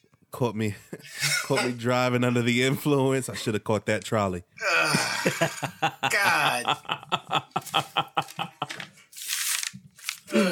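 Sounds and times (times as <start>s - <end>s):
speech: 0.3s - 8.5s
person chuckling: 4.6s - 8.9s
paper being ripped up: 7.6s - 10.4s.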